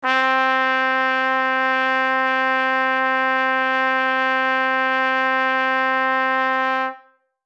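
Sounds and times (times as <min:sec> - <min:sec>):
trumpet in C note with audible overtones: 0:00.0 - 0:07.4.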